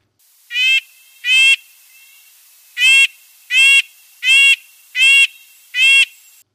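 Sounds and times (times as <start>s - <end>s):
faint steady hiss: 0.0s - 6.5s
red-breasted nuthatch nasal yank calls: 0.5s - 2.2s, 2.8s - 6.2s.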